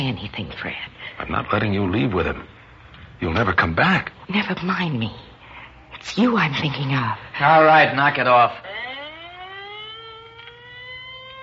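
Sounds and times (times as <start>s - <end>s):
speech: 0.0s - 2.6s, 3.2s - 5.3s, 6.0s - 8.8s
low constant hum: 0.0s - 11.4s
ambulance siren passing: 6.8s - 11.4s.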